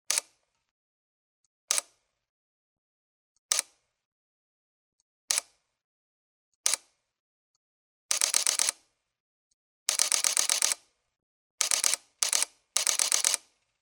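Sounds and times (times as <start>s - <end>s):
camera: 0.1s - 0.4s, 1.7s - 2.0s, 3.5s - 3.8s, 5.3s - 5.6s, 6.6s - 7.0s, 8.1s - 8.9s, 9.9s - 10.9s, 11.6s - 13.7s.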